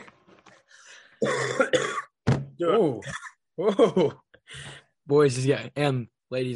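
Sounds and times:
man coughing: 0:01.2 - 0:02.2, 0:02.9 - 0:04.2
speech: 0:02.6 - 0:06.5.

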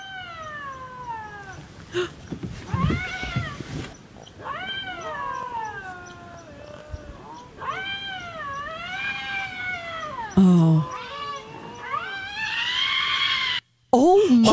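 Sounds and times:
bobcat mating call yowling: 0:00.0 - 0:13.6
speech: 0:01.9 - 0:02.2
person exclaiming: 0:10.4 - 0:10.9, 0:14.0 - 0:14.5.

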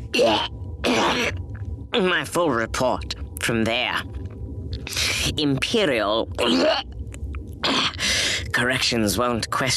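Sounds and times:
man hacking coughs: 0:00.2 - 0:01.4, 0:07.6 - 0:08.0
speech: 0:00.2 - 0:04.2, 0:04.9 - 0:06.9, 0:08.6 - 0:09.7.

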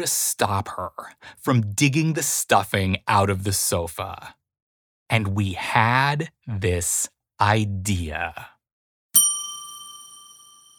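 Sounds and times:
speech: 0:00.0 - 0:04.4, 0:05.1 - 0:08.5
single bright metallic bell ding: 0:09.2 - 0:10.7.

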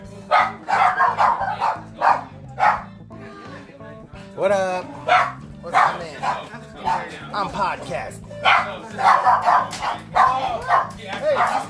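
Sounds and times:
chatter: 0:00.0 - 0:11.6
dogs barking excitedly at the door: 0:00.3 - 0:02.9, 0:05.0 - 0:07.2, 0:08.4 - 0:11.6
speech: 0:04.4 - 0:04.8.

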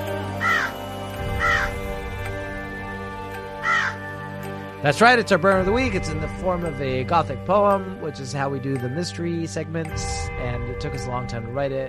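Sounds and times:
harsh raspy bird calls: 0:00.4 - 0:01.9, 0:03.6 - 0:04.2
speech: 0:04.8 - 0:11.8.

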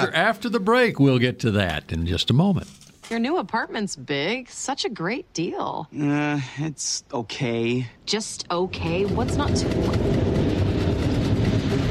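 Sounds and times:
speech: 0:00.0 - 0:10.2
subway train rumbling: 0:09.0 - 0:11.8.

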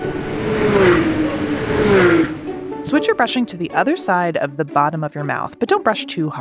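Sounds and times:
NASCAR race car engines roaring at high speed: 0:00.0 - 0:04.4
speech: 0:02.9 - 0:06.3.

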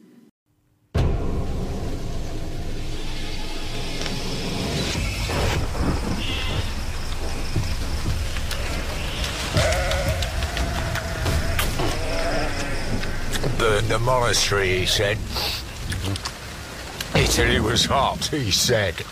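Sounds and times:
heavy rain: 0:01.4 - 0:19.0
faint animal bleats: 0:09.5 - 0:13.4
speech: 0:13.9 - 0:15.6, 0:17.3 - 0:19.0.

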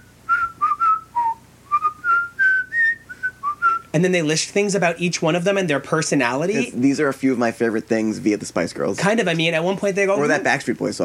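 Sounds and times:
person whistling a short tune: 0:00.3 - 0:03.9
speech: 0:03.9 - 0:11.0.

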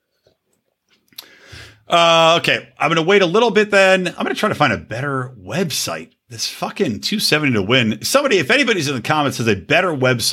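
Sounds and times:
faint wet mouth clicks: 0:00.9 - 0:01.3
speech: 0:01.9 - 0:10.3.

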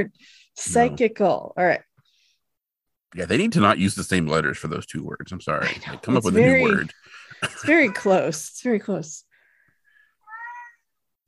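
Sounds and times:
speech: 0:00.0 - 0:01.9, 0:03.1 - 0:09.3
cat chirping: 0:10.2 - 0:10.9.

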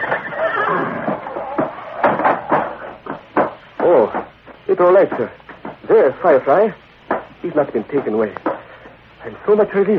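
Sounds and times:
horse neighing in a stable: 0:00.0 - 0:02.2
speech: 0:04.8 - 0:06.8, 0:07.4 - 0:08.4, 0:09.2 - 0:09.9.

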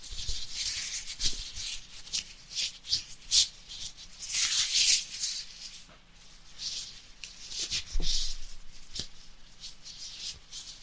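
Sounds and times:
scratchy rubbing and crinkling in an ear cleaning roleplay: 0:00.0 - 0:10.8.

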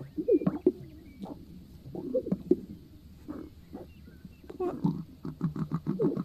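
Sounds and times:
animal lekking call with pig-like grunting snorts and snuffling: 0:00.0 - 0:06.2.

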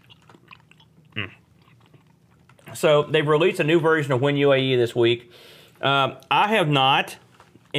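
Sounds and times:
person chewing food with soft wet mouth sounds: 0:00.0 - 0:02.9
speech: 0:01.2 - 0:01.4, 0:02.7 - 0:07.2.

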